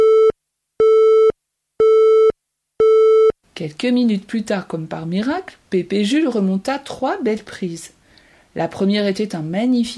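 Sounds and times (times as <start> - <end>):
telephone busy tone after a call drops: 0.0 - 3.3
speech: 3.6 - 8.0, 8.6 - 9.9.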